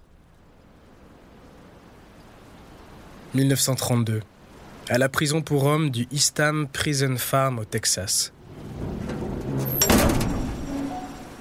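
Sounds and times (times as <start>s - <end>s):
speech: 3.3s - 8.7s
heavy metal prison doors at Eastham Prison Farm in Texas slamming shut: 8.8s - 11.2s.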